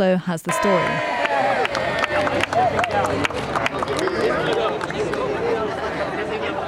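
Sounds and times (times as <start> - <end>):
speech: 0.0 - 5.4
scattered clapping at a ribbon-cutting ceremony: 0.5 - 5.6
crowd of community members murmuring and cheering at a ribbon-cutting ceremony: 0.5 - 6.6
overlapping voices: 0.5 - 6.6.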